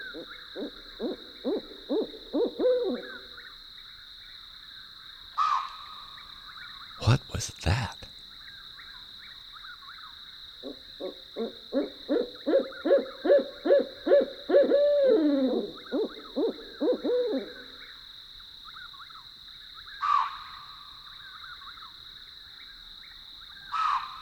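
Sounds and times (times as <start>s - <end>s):
steady insect drone at night: 0.0s - 24.2s
barred owls hooting at night: 0.1s - 3.3s, 10.6s - 17.8s.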